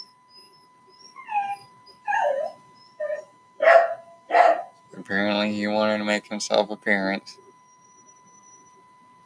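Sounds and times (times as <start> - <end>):
faint steady hum: 0.0 - 9.2
dog whining and yelping: 0.3 - 4.7, 7.7 - 8.8
speech: 5.0 - 7.4.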